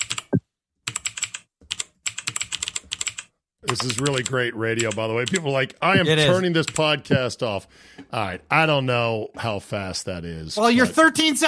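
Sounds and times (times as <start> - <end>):
computer keyboard typing: 0.0 - 5.6, 6.6 - 6.9
speech: 3.7 - 11.4.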